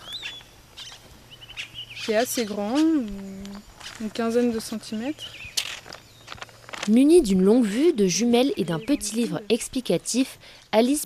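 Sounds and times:
caciques calling from their nests in French Guiana: 0.0s - 10.7s
low steady hum: 0.0s - 11.0s
speech: 2.1s - 3.4s, 4.0s - 5.4s, 6.9s - 11.0s.

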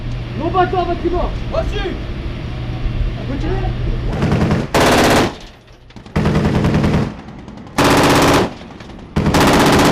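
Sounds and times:
speech: 0.4s - 2.1s, 3.3s - 4.5s
rapid-fire anti-aircraft and anti-missile weapon shooting: 4.1s - 9.8s.

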